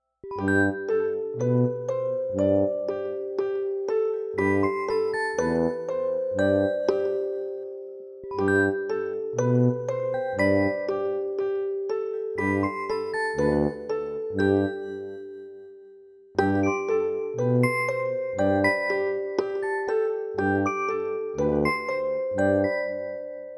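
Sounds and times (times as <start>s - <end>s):
playful music without drums: 0.2s - 23.5s.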